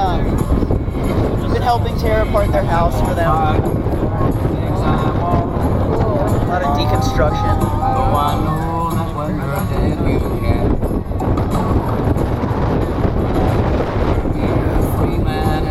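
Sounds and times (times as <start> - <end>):
strong wind blowing outdoors buffeting the microphone: 0.0 - 15.6
speech: 1.7 - 5.4, 6.6 - 12.2.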